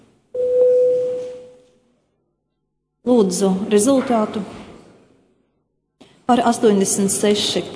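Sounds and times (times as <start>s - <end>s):
murmur of a large room: 0.0s - 7.7s
parliamentary electronic voting bell tone: 0.4s - 1.6s
speech: 3.1s - 4.6s, 6.3s - 7.7s.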